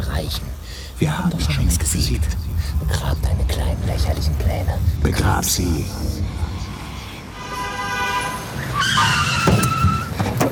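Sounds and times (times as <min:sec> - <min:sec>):
car engine rumbling in Berlin: 0:00.0 - 0:10.5
speech: 0:00.2 - 0:06.5
car tires squealing in Berlin: 0:05.1 - 0:10.5.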